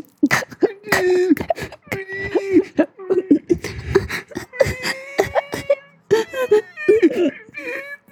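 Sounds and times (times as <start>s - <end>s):
voice imitating ASMR-style crying and sobbing: 0.2s - 8.1s.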